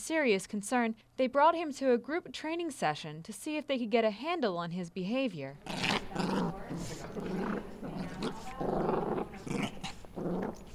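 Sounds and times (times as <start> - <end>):
speech: 0.1 - 6.2
dog growling: 5.6 - 10.7.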